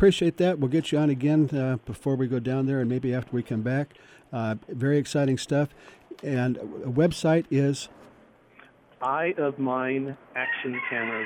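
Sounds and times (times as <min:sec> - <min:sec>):
speech: 0:00.0 - 0:08.0, 0:09.0 - 0:11.2
rooster crowing: 0:10.4 - 0:11.2.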